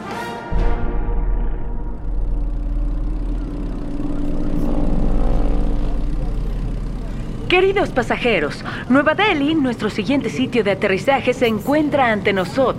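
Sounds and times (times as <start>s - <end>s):
aeroplane in flight with deep continuous engine roar: 0.5s - 12.7s
speech: 7.5s - 12.7s.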